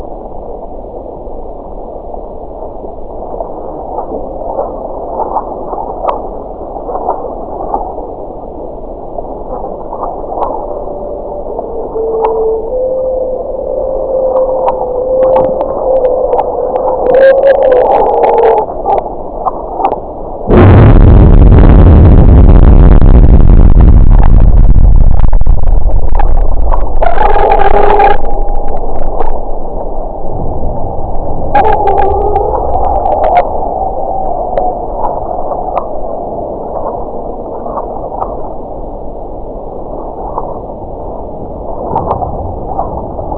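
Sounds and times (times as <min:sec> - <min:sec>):
sonification of seismic events of a magnitude 6.3 earthquake in the Ionian Islands Greece: 0:00.0 - 0:43.3.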